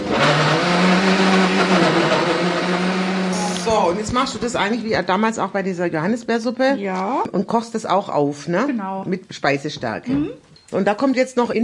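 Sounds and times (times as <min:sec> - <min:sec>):
blender pureeing peaches: 0:00.0 - 0:05.2
speech: 0:04.0 - 0:11.6.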